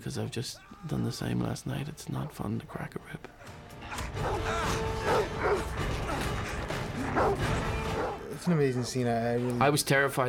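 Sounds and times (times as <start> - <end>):
speech: 0.0 - 3.6, 4.2 - 5.6, 7.2 - 7.7, 8.4 - 10.2
dog barking and snarling aggressively: 3.9 - 8.9.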